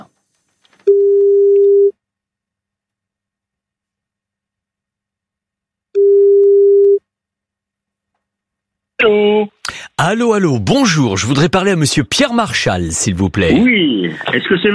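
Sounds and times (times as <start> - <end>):
telephone line tone while a call is being placed: 0.8 - 1.9, 6.0 - 7.0
speech: 9.0 - 14.7.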